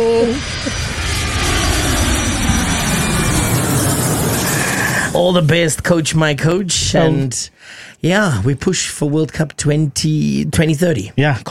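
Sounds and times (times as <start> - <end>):
jet plane flyover roar: 0.0 - 5.9
brief tonal whine: 0.0 - 6.0
speech: 5.2 - 11.4.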